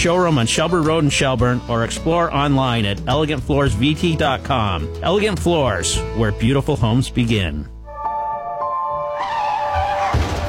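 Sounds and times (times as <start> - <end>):
speech: 0.0 - 7.8
car tires squealing in a long high-pitched skid: 9.1 - 10.4
heavy crunching collision of metal and car bumpers: 9.8 - 10.4.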